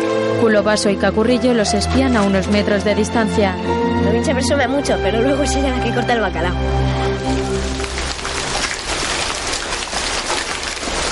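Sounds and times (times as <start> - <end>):
speech: 0.4 - 8.1
light rain falling outside an old church: 7.0 - 11.1.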